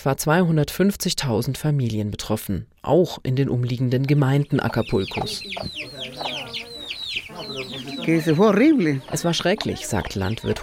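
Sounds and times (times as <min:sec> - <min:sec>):
speech: 0:00.0 - 0:06.7, 0:07.4 - 0:10.6
several chickens clucking and squawking: 0:04.6 - 0:10.6
chicken loud drawn-out call: 0:04.9 - 0:09.2.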